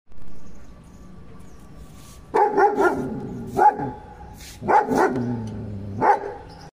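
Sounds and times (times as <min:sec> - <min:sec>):
German Shepherd dog: 0:02.4 - 0:04.0, 0:04.6 - 0:05.3.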